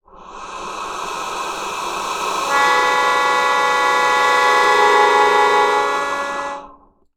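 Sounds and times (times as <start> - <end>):
melodica wind instrument: 2.5 - 6.7.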